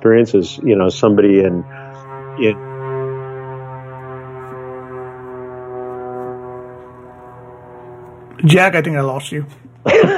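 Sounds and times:
speech: 0.0 - 1.8, 2.4 - 2.7, 8.4 - 10.1
droning engine hum with a strong buzzing tone: 0.0 - 10.1
laughter: 9.8 - 10.1.

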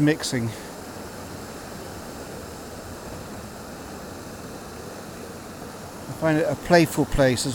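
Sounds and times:
speech: 0.0 - 0.7, 6.2 - 7.5
sea water washing around a paddling kayak in swell: 0.7 - 6.2.

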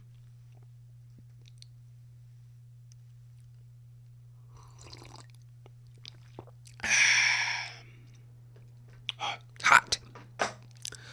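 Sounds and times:
steady low hum: 0.0 - 11.1
person sipping water: 4.5 - 8.2
slurpy gulp: 4.6 - 5.3, 6.0 - 6.8.

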